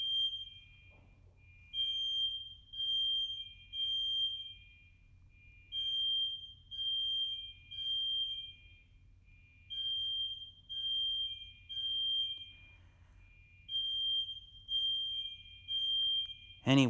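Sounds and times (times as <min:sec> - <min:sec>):
smoke alarm beeping outside a bedroom door: 0:00.0 - 0:16.8
speech: 0:16.7 - 0:16.8.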